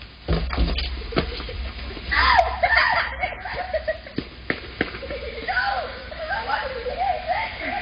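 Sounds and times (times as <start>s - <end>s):
children laughing excitedly: 0.7s - 7.8s
crowd of children yelling and shrieking: 2.1s - 3.8s, 5.2s - 7.8s.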